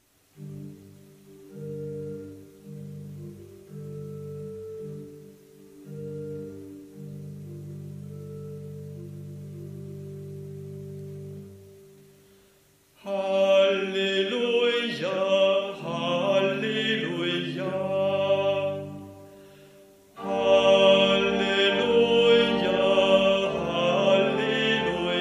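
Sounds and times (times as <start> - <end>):
choir singing: 13.0 - 19.3, 20.2 - 25.2.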